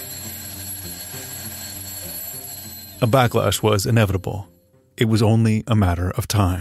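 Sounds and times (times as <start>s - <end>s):
alarm clock ringing: 0.0s - 4.7s
speech: 3.0s - 6.5s.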